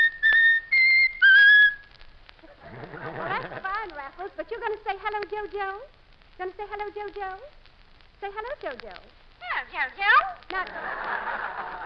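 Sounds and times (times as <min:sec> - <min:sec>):
bird whistling a tune on command: 0:00.0 - 0:01.9
laughter: 0:02.4 - 0:03.9, 0:10.6 - 0:11.8
speech: 0:05.4 - 0:07.6, 0:08.2 - 0:11.8.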